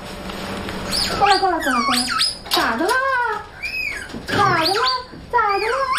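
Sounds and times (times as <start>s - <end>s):
baby gibbon squeaking and crying: 0.9s - 2.6s, 3.5s - 5.9s.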